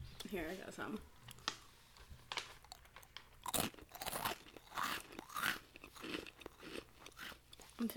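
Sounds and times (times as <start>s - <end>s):
speech: 0.3s - 1.2s, 7.8s - 7.9s
person crunching and chewing a crisp snack: 2.4s - 7.8s.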